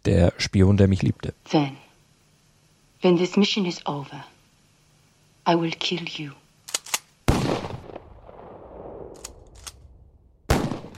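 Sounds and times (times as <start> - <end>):
speech: 0.0 - 1.8, 3.0 - 4.3, 5.4 - 6.4
gunshots heard from a house: 7.3 - 9.4, 10.5 - 10.9.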